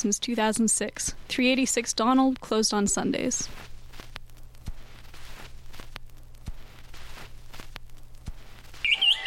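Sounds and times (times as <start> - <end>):
speech: 0.0 - 3.7
low steady hum: 0.0 - 9.2
wood thrush singing: 8.9 - 9.2.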